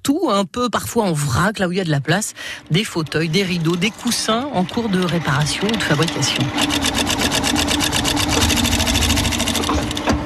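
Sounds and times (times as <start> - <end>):
speech: 0.0 - 7.1
sewing machine stitching in an upholsterer's workshop: 2.1 - 10.2.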